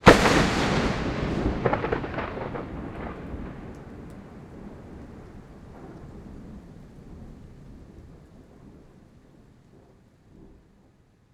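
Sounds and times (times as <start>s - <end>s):
close thunder crack: 0.0s - 8.8s.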